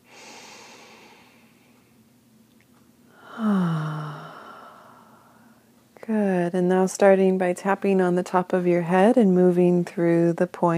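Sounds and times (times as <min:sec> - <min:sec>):
person taking a deep breath: 0:00.0 - 0:01.8, 0:03.1 - 0:05.6
speech: 0:06.1 - 0:10.7.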